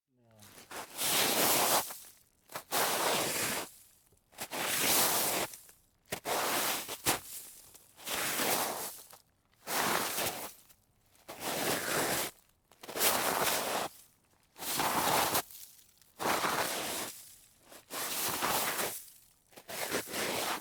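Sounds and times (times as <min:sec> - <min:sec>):
sliding on snow: 0:00.5 - 0:01.9, 0:02.7 - 0:03.6, 0:04.5 - 0:05.5, 0:08.1 - 0:09.0, 0:09.7 - 0:10.4, 0:11.4 - 0:12.3, 0:12.9 - 0:13.9, 0:14.6 - 0:15.4, 0:16.2 - 0:17.2, 0:17.8 - 0:19.0, 0:19.6 - 0:20.6.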